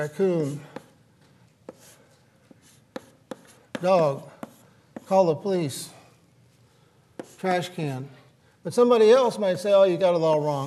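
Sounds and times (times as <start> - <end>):
speech: 0.0 - 0.7, 3.8 - 4.3, 5.1 - 6.0, 7.4 - 10.6
writing on a board during a lecture: 0.0 - 1.0, 1.6 - 5.2, 7.2 - 7.5.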